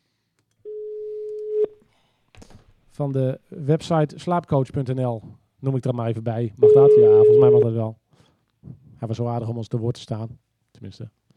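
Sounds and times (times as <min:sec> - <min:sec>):
click at the end of a telephone ringback tone: 0:00.4 - 0:00.6
mid-pitched telephone ringback tone: 0:00.7 - 0:01.7, 0:06.6 - 0:07.7
speech: 0:03.0 - 0:08.0, 0:08.6 - 0:11.2.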